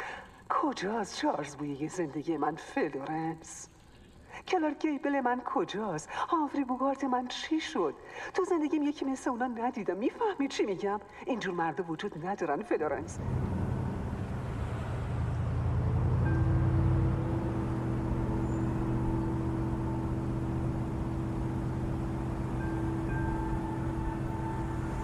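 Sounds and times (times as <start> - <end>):
speech: 0.6 - 3.8, 4.4 - 13.5
car engine passing by: 13.0 - 25.0.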